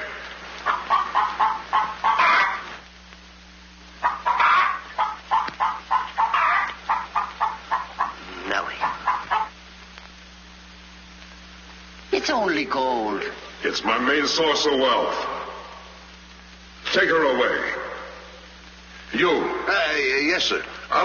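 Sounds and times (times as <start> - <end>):
hen clucking while laying an egg: 0.0 - 2.7, 4.0 - 9.6
speech: 12.4 - 15.3, 17.0 - 17.8, 19.2 - 21.0.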